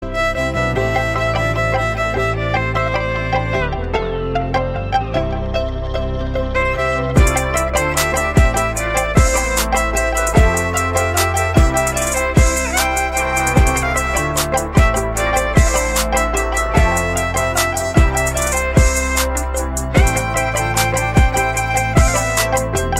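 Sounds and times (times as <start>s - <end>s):
violin remix music: 0.0s - 22.9s.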